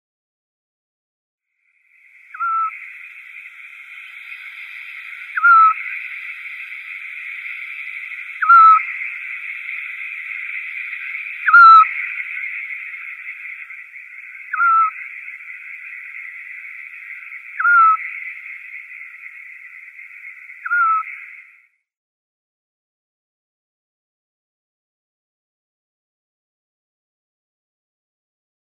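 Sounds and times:
female European Scops-Owl calling: 0:02.0 - 0:21.6.

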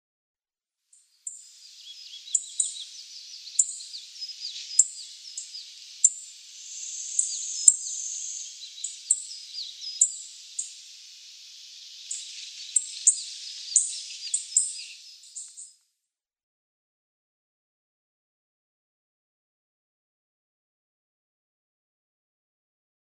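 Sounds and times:
Chestnut Bunting calls: 0:01.3 - 0:15.7.

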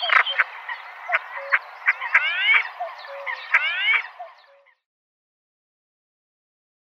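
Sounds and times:
Common pochard males calling with soft notes and upward-sliding whistles: 0:00.0 - 0:04.8.

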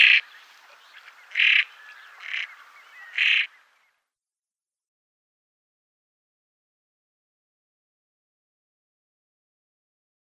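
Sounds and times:
female common pochard giving faint softer calls: 0:00.0 - 0:03.5
female common pochard giving harsh rasping calls: 0:01.3 - 0:02.5, 0:03.1 - 0:03.5.

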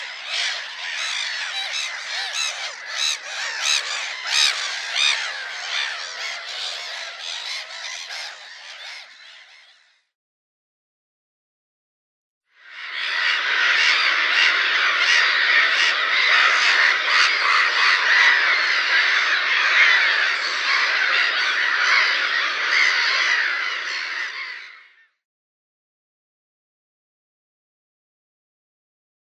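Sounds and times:
Black-headed Gulls squawking: 0:00.0 - 0:10.0, 0:12.8 - 0:25.0.

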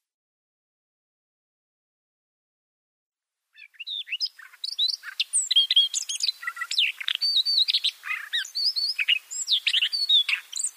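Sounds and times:
Siberian rubythroat singing: 0:03.6 - 0:10.7.

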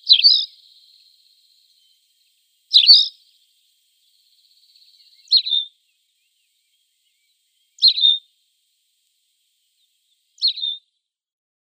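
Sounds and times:
Tawny pipit singing brief sharp downward-sweeping chirps: 0:00.0 - 0:10.9.

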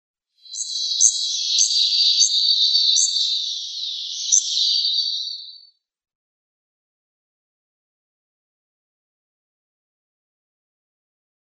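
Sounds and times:
Taiga Flycatcher calls: 0:00.4 - 0:05.7.

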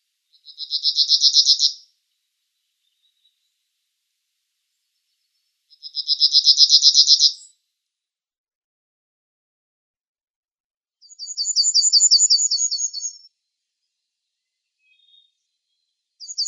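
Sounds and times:
Yellowhammer song trills: 0:00.0 - 0:03.7, 0:04.7 - 0:07.6, 0:11.0 - 0:16.4.

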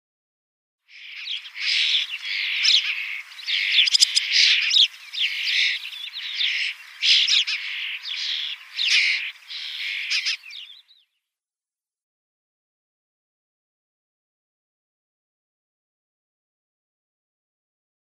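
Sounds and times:
Spotless Starling nestlings calling: 0:00.9 - 0:11.0.

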